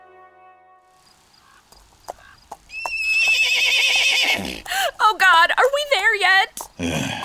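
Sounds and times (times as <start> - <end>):
horse hoof clops: 1.6 - 7.2
horse snorting: 2.1 - 4.8, 6.6 - 7.2
horse neighing: 2.1 - 4.9.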